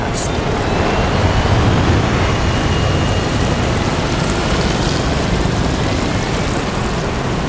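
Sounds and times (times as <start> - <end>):
aircraft taking off: 0.0 - 7.4.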